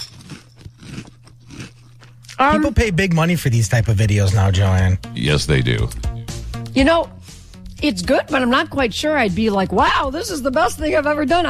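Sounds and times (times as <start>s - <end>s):
crunching frozen cereal into the microphone: 0.0s - 2.4s
speech: 2.4s - 6.1s, 6.8s - 7.2s, 7.8s - 11.4s.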